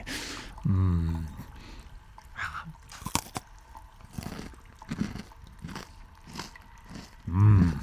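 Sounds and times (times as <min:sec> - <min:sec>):
biting and chewing a crunchy salty snack: 0:02.9 - 0:03.5, 0:04.1 - 0:07.8.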